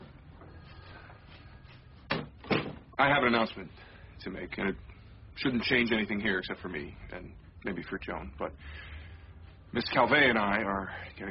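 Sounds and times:
door closing with a solid thud: 0:02.1 - 0:02.9
speech: 0:03.0 - 0:08.9, 0:09.7 - 0:11.2.

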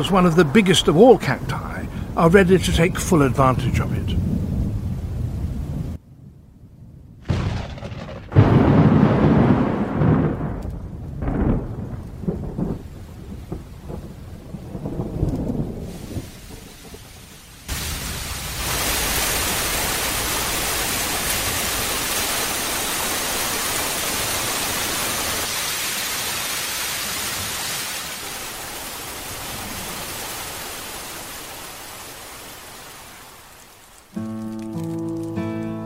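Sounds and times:
speech: 0:00.0 - 0:04.3
heavy rain in a summer monsoon thunderstorm: 0:00.0 - 0:06.0, 0:07.3 - 0:35.5
deep rolling thunder in a summer monsoon thunderstorm: 0:00.0 - 0:21.9.

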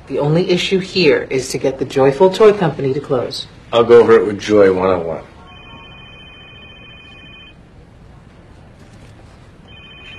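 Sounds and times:
steady low hum: 0:00.0 - 0:10.1
speech: 0:00.1 - 0:05.3
mobile phone ringing with a bright electronic ringtone: 0:05.4 - 0:07.6, 0:09.7 - 0:10.1.

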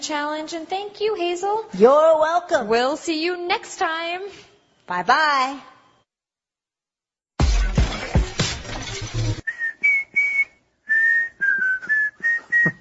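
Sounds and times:
speech: 0:00.0 - 0:05.7
crash of shattering glass: 0:07.4 - 0:09.4
person whistling a tune: 0:09.4 - 0:12.7.

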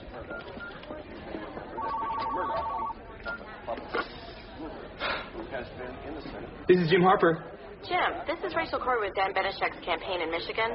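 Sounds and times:
overlapping voices and chatter: 0:00.0 - 0:10.7
telephone ringing with electronic tone: 0:01.7 - 0:03.4
speech: 0:05.6 - 0:10.7.

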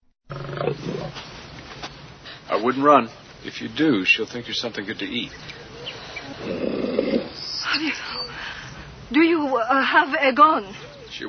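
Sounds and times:
lioness roaring: 0:00.3 - 0:01.2, 0:05.6 - 0:07.4
speech: 0:02.6 - 0:05.6, 0:06.3 - 0:06.8, 0:07.7 - 0:11.2.

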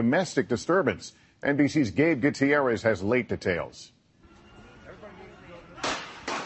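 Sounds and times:
speech: 0:00.0 - 0:04.0
gunshots from a police officer's weapon outside an airport baggage claim: 0:05.8 - 0:06.4.

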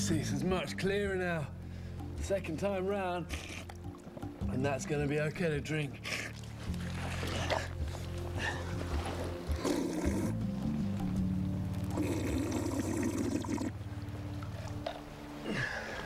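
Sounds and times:
speech: 0:00.0 - 0:01.6, 0:02.2 - 0:03.6, 0:04.4 - 0:06.2
water pouring through a sediment and sand filter: 0:06.2 - 0:15.9.

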